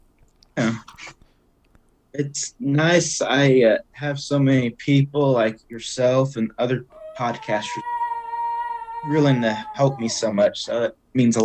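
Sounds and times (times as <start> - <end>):
speech: 0.6 - 1.0, 2.2 - 7.9, 9.0 - 11.4
dog howling: 6.9 - 10.8.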